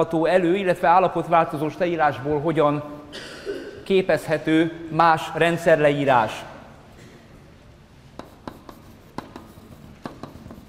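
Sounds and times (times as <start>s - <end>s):
speech: 0.0s - 3.3s, 3.9s - 6.5s
pen or chalk scratching out writing: 8.2s - 10.6s.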